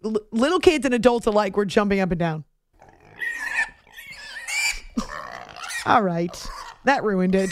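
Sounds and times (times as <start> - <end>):
speech: 0.0 - 2.5, 5.8 - 7.5
person imitating pot-bellied pig grunts: 4.6 - 6.8.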